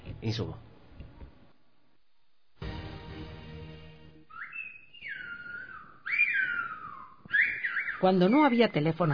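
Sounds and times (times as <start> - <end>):
speech: 0.2 - 0.7, 8.0 - 9.1
Silbo Gomero whistled language: 4.3 - 9.1.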